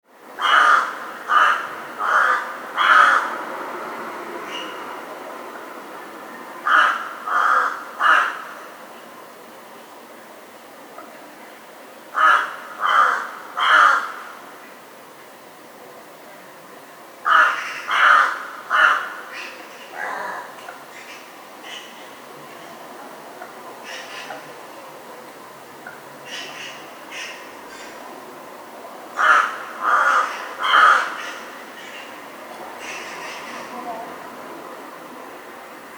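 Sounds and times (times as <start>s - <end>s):
crow cawing: 0.4s - 3.4s, 6.6s - 8.6s, 12.2s - 14.4s, 17.3s - 22.0s, 26.3s - 27.9s, 29.2s - 32.1s, 32.8s - 33.7s.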